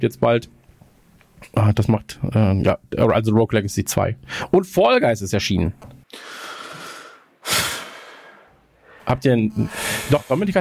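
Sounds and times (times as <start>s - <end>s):
speech: 0.0s - 0.6s, 1.4s - 6.4s, 9.1s - 10.5s
person breathing heavily during a video gaming session: 4.2s - 4.5s, 6.1s - 10.2s.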